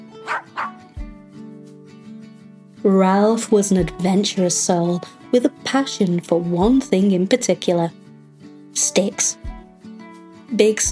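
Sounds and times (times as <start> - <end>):
puppy yapping: 0.2 - 0.9
speech: 2.8 - 8.0, 8.8 - 9.5, 10.6 - 10.9.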